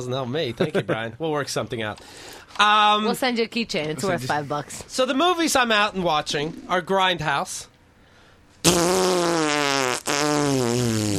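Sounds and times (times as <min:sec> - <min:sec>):
speech: 0:00.0 - 0:07.7, 0:08.6 - 0:09.4
loud long buzzy fart sound effect: 0:08.6 - 0:11.1.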